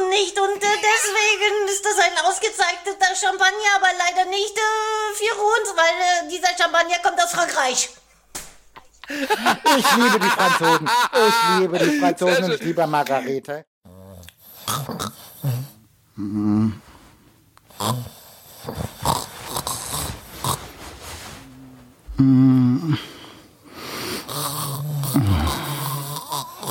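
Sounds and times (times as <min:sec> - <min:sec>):
speech: 0:00.2 - 0:08.0, 0:09.1 - 0:13.7, 0:16.2 - 0:16.8, 0:17.8 - 0:18.9, 0:22.2 - 0:23.1
laughter: 0:09.0 - 0:13.4
person snoring: 0:13.9 - 0:17.0, 0:17.7 - 0:26.6
rustling: 0:18.9 - 0:22.1.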